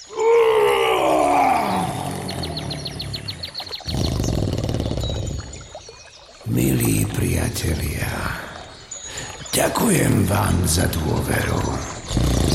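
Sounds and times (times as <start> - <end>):
faint rapid chirping or clicking: 0.0 - 12.5
lion roaring: 0.1 - 5.6, 12.0 - 12.5
speech: 7.5 - 8.4, 9.6 - 11.9.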